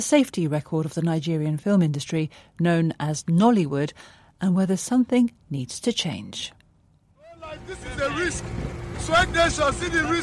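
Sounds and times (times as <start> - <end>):
speech: 0.0 - 6.6, 7.4 - 10.2
motorboat engine drone travelling fast across water: 7.2 - 10.2.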